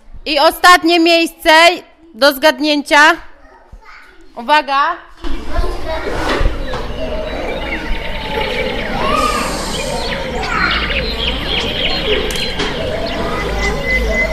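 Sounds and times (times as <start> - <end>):
speech: 0.2 - 3.3, 4.4 - 6.1
birds chirping and singing in a countryside village: 5.3 - 14.3.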